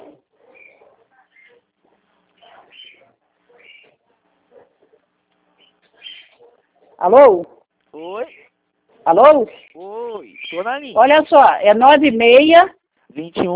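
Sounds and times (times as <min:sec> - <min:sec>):
faint murmur: 0:00.0 - 0:10.3
bird singing in chirping phrases through a phone line: 0:02.4 - 0:04.0, 0:05.6 - 0:06.5, 0:09.2 - 0:11.0
speech: 0:07.0 - 0:08.4, 0:09.0 - 0:09.8, 0:10.5 - 0:13.5.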